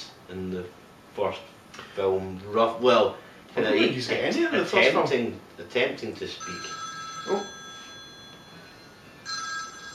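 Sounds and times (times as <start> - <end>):
quiet steady hum: 0.0 - 9.9
speech: 0.3 - 7.5
telephone ringing with a bright electronic tone: 6.4 - 9.9.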